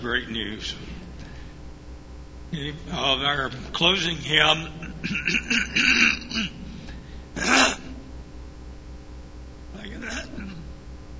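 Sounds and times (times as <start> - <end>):
speech: 0.0 - 1.0, 2.5 - 6.6, 7.4 - 7.7
throat clearing during a church service: 4.8 - 8.0, 10.0 - 10.8.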